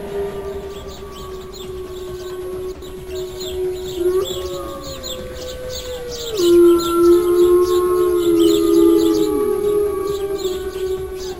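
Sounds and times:
bone flute blown forcefully, tone rising and falling: 0:00.0 - 0:11.3.

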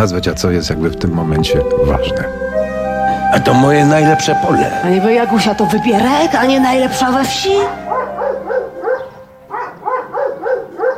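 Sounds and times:
speech: 0:00.0 - 0:02.7, 0:03.3 - 0:07.8
dog barking in a stage play: 0:07.9 - 0:10.9.

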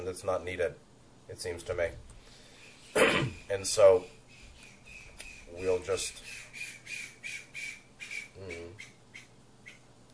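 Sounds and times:
speech: 0:00.1 - 0:02.1, 0:02.9 - 0:04.2, 0:05.5 - 0:06.4, 0:08.4 - 0:08.9
birds squawking outdoors in the neighborhood at the end of summer: 0:02.3 - 0:09.9.

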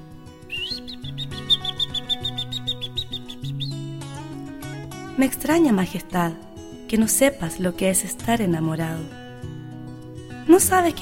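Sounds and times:
soft music: 0:00.0 - 0:11.0
small bird chirping: 0:00.4 - 0:03.9
speech: 0:05.2 - 0:09.2, 0:10.5 - 0:11.0.

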